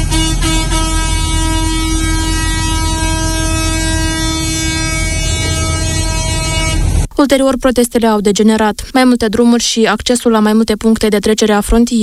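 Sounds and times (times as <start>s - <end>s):
horns of agricultural machinery honking at a protest: 0.0s - 7.1s
low engine rumble: 0.0s - 7.1s
speech: 7.2s - 12.0s.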